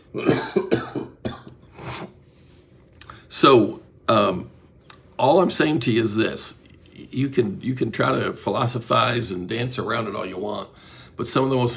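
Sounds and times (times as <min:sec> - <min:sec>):
speech: 0:00.1 - 0:00.4, 0:03.4 - 0:03.8, 0:05.2 - 0:11.7
person coughing: 0:00.1 - 0:02.1.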